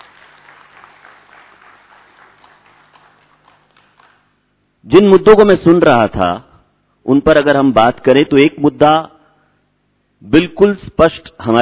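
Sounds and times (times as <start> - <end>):
audience applauding at a talk event: 0.0 - 4.3
speech: 4.8 - 9.1, 10.2 - 11.6.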